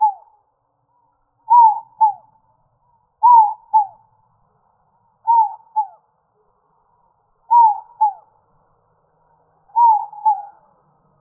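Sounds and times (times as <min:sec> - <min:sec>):
dove giving falling double-note coos: 0:00.0 - 0:00.3, 0:01.5 - 0:02.3, 0:03.2 - 0:04.0, 0:05.2 - 0:06.0, 0:07.5 - 0:08.3, 0:09.7 - 0:10.7.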